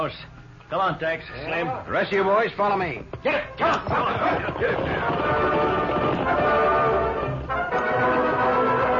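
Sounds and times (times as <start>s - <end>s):
speech: 0.0s - 6.8s
group of ridden horses galloping away: 2.2s - 8.9s
dense clatter of horse hooves: 3.2s - 7.0s.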